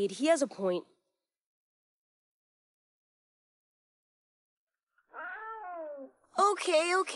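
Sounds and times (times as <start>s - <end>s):
speech: 0.0s - 1.0s, 6.4s - 7.1s
wild cat drawn-out meow: 5.1s - 6.2s.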